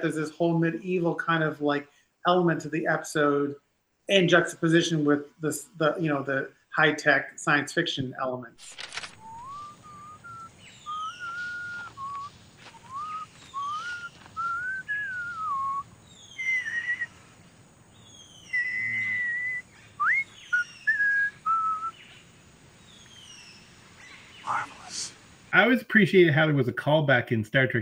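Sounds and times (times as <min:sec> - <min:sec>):
speech: 0:00.0 - 0:08.9, 0:25.7 - 0:27.7
faint low hum: 0:00.0 - 0:27.7
person whistling a simple tune: 0:09.2 - 0:15.8, 0:18.6 - 0:21.9.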